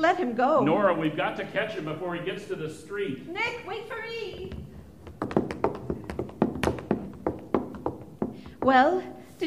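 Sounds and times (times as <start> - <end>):
speech: 0.0 - 4.6, 8.6 - 9.4
quick footsteps going down a staircase: 4.0 - 9.4.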